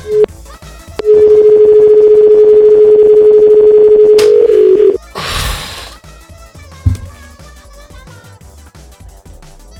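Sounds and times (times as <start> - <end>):
telephone line dialing tones: 0.0 - 0.3, 1.0 - 5.0
soft knock: 6.9 - 7.4.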